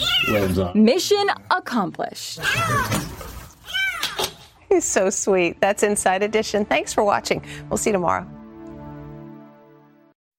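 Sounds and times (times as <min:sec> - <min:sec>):
kitten stuck behind a wall in Australia meowing: 0:00.0 - 0:00.6
speech: 0:00.3 - 0:03.3, 0:04.7 - 0:08.4.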